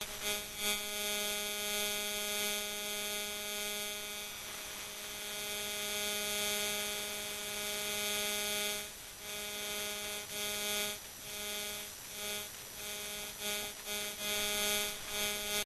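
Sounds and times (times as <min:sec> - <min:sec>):
static interference noise: 0:00.0 - 0:15.6.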